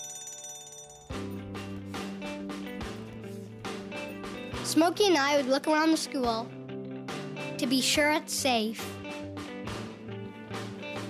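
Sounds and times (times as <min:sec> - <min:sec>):
school fire alarm bell ringing: 0:00.0 - 0:01.4
speech: 0:04.7 - 0:06.6, 0:07.6 - 0:09.0.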